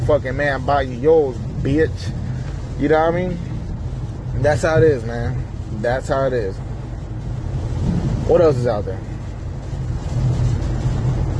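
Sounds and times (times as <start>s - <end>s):
car driving on a highway in heavy rain: 0.0s - 11.3s
speech: 0.1s - 2.2s, 2.8s - 3.5s, 4.3s - 6.6s, 8.3s - 9.1s.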